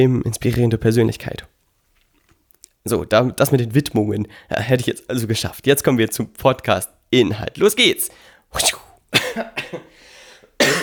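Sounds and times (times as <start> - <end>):
speech: 0.0 - 1.5, 2.8 - 9.9
person coughing: 8.6 - 10.0, 10.6 - 10.8.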